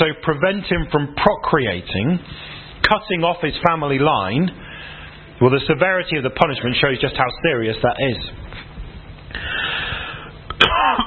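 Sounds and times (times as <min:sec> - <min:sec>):
speech: 0:00.0 - 0:08.4
person clearing throat from a tickle: 0:10.5 - 0:11.0.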